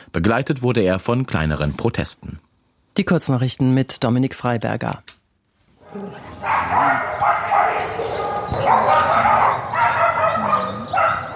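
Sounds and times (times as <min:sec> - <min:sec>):
speech: 0:00.2 - 0:05.2
many dogs barking in animal shelter kennels: 0:05.8 - 0:11.3.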